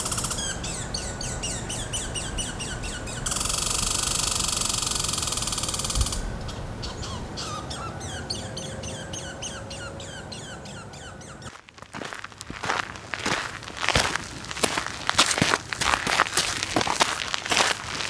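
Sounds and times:
harsh buzzing squawk: 0.0 - 11.6
birds chirping in a forest: 0.0 - 18.0.

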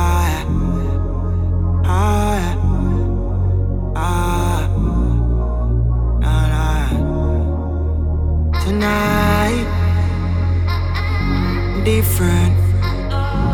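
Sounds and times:
deep bass line in a song intro: 0.0 - 13.5.

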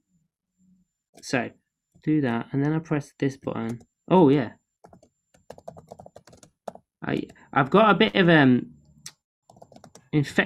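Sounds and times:
speech: 1.2 - 4.6, 7.1 - 8.7, 10.1 - 10.4
typing on a computer keyboard: 4.8 - 7.4, 9.5 - 10.1.

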